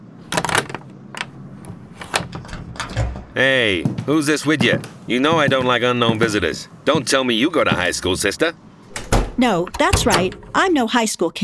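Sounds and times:
door latch and handle clicks and clunks: 0.3 - 3.0, 8.9 - 10.8
speech: 3.4 - 8.6, 9.4 - 11.4.

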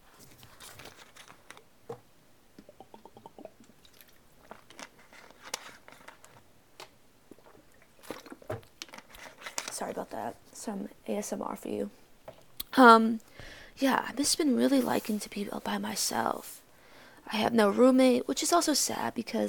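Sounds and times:
small mouth clicks and smacks: 2.6 - 4.2
person drinking water with soft wet gulps and swallows: 2.6 - 4.6, 7.3 - 8.6
speech: 9.8 - 12.0, 12.8 - 16.6, 17.3 - 19.4.

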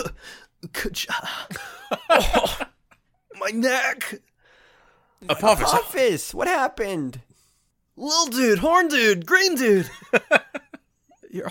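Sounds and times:
speech: 0.6 - 2.6, 3.4 - 4.3, 5.2 - 7.3, 8.0 - 10.6
person coughing awake: 1.5 - 2.7
laughter: 1.5 - 3.0, 9.8 - 10.9
person giving a strained gasp: 4.4 - 5.2.

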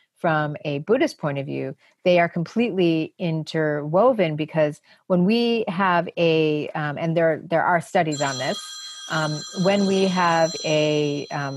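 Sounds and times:
speech: 0.2 - 11.5
phone ringing with a high electronic tone: 8.1 - 11.5.

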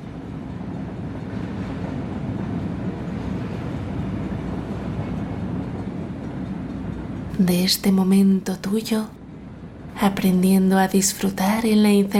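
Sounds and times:
moving train rattling gently: 0.0 - 12.1
speech: 7.4 - 9.2, 10.0 - 12.1.

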